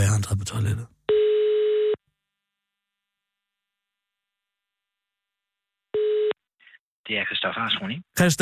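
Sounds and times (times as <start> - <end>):
speech: 0.3 - 1.0, 7.1 - 8.4
telephone ringback tone on an outgoing call: 1.1 - 2.0, 6.0 - 6.4.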